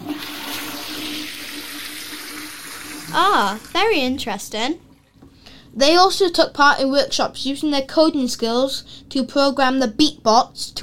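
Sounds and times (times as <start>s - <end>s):
toilet flushing with a rushing gush of water: 0.0s - 5.5s
speech: 3.1s - 4.9s, 5.8s - 10.8s.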